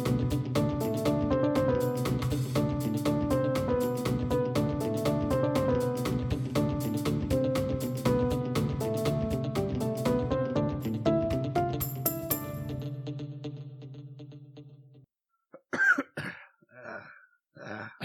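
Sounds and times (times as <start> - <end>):
tonal music: 0.0 - 13.1
person coughing: 15.6 - 18.0.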